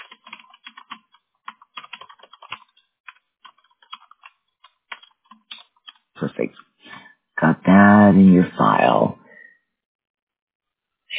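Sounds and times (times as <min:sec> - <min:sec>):
fingers typing on a computer keyboard: 0:00.0 - 0:06.1
speech: 0:06.2 - 0:06.7, 0:07.4 - 0:09.2.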